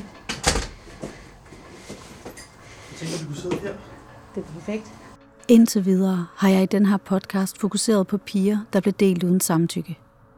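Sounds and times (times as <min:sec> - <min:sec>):
heavy door lifted and swung open with thud scrape and creaks: 0:00.0 - 0:01.0
speech: 0:03.0 - 0:10.0.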